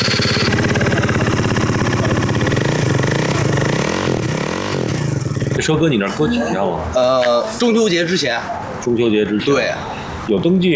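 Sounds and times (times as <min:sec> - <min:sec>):
motorcycle with modified exhaust roaring and revving: 0:00.0 - 0:05.8
speech: 0:05.6 - 0:10.7.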